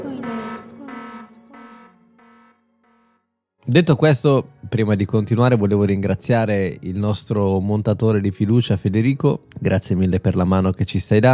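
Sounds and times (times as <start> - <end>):
buzzy electronic alarm sound effect for spoiler warning: 0.0 - 3.3
speech: 3.7 - 11.3.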